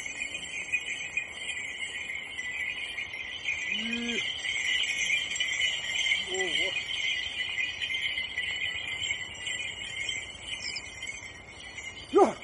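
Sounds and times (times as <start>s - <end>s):
chorus of crickets and insects chirping: 0.0s - 12.4s
man humming or calling out: 3.8s - 4.2s, 12.1s - 12.4s.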